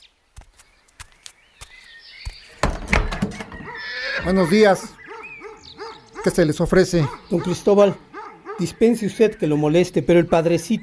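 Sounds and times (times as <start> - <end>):
faint birdsong outside: 0.0 - 10.8
door opening with knocks, creak and rattling clatter: 2.5 - 4.8
speech: 4.2 - 5.0, 6.2 - 10.8.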